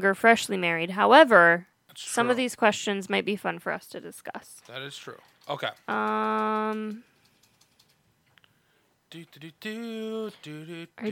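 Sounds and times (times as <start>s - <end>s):
speech: 0.0s - 7.1s, 9.1s - 11.0s
typing on a computer keyboard: 4.6s - 8.0s.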